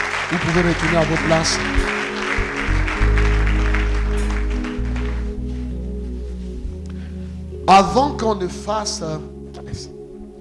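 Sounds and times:
church congregation applauding: 0.0 - 5.9
low steady musical tones: 0.0 - 10.3
speech: 0.3 - 1.9, 7.7 - 9.9.

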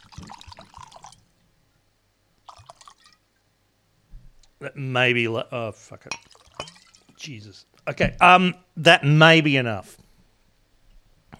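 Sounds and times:
whiskey splashing and trickling into a glass: 0.0 - 1.3, 2.4 - 3.2, 6.1 - 7.2
speech: 4.6 - 10.0.

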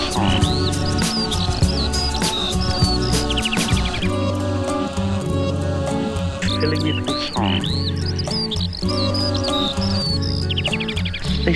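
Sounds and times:
bird singing high in the sky: 0.0 - 11.5
dense sustained musical backdrop: 0.0 - 11.5.

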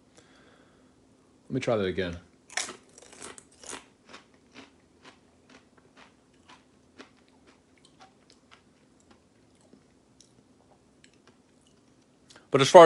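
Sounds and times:
speech: 1.5 - 2.3, 12.5 - 12.8
person biting and chewing a cheese-flavoured snack: 2.5 - 12.1.

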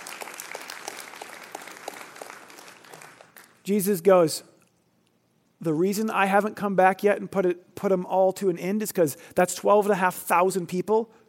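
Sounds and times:
audience applauding: 0.0 - 3.6
speech: 3.7 - 4.5, 5.6 - 11.2.

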